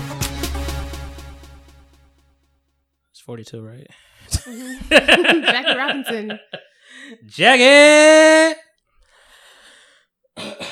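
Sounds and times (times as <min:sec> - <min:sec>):
speech: 0:03.2 - 0:08.6
harsh coughing to clear phlegm from throat: 0:04.2 - 0:06.7, 0:10.4 - 0:10.7
laughter: 0:04.3 - 0:08.4
person coughing to clear phlegm from throat: 0:10.4 - 0:10.7.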